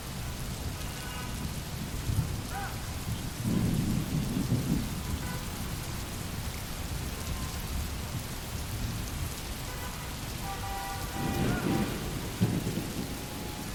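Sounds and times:
steady rain: 0:00.0 - 0:13.7
deep rumbles of thunder: 0:01.8 - 0:05.2, 0:10.2 - 0:13.7.

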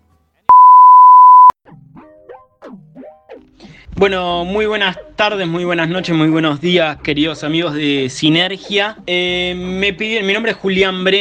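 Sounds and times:
answering machine beep: 0:00.5 - 0:01.5
playful sliding electronic chirps: 0:00.5 - 0:01.5
speech: 0:04.0 - 0:11.1.

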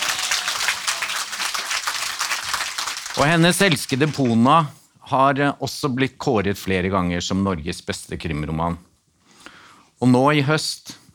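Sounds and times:
audience applause for a crime writer: 0:00.0 - 0:04.5
speech: 0:03.2 - 0:08.9, 0:10.0 - 0:11.0.

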